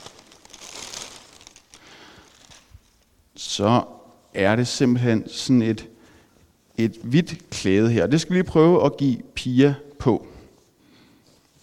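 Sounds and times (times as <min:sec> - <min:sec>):
paper crinkling as a gift is unwrapped: 0:00.0 - 0:03.1, 0:11.2 - 0:11.6
speech: 0:03.6 - 0:05.9, 0:06.8 - 0:10.3.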